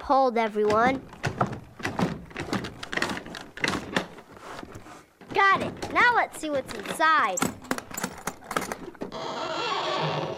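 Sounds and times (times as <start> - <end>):
speech: 0.1 - 1.5, 5.4 - 7.6
sharp metallic rattles and knocks: 0.4 - 9.1
old hinges of heavy trunk lid creaking open: 0.4 - 10.3.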